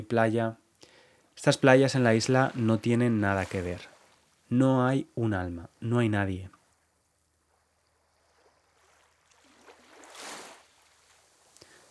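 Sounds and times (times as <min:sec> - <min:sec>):
speech: 0:00.0 - 0:00.6, 0:01.4 - 0:03.9, 0:04.5 - 0:06.6
soft sea wave on an empty island beach: 0:01.4 - 0:05.6, 0:07.5 - 0:11.8
faint ticks: 0:11.5 - 0:11.8.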